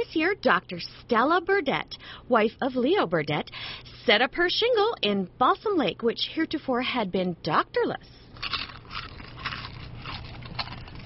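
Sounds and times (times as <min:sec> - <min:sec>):
speech: 0:00.1 - 0:08.2
person chewing crackers loudly: 0:08.3 - 0:11.0.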